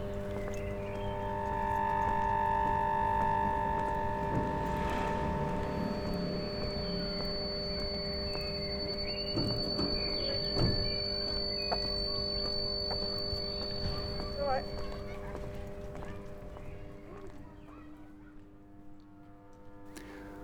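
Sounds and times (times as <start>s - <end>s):
brief electrical whine: 0.0s - 14.8s
electrical hum from street power boxes: 0.0s - 20.4s
outdoor street ambience: 0.0s - 20.4s.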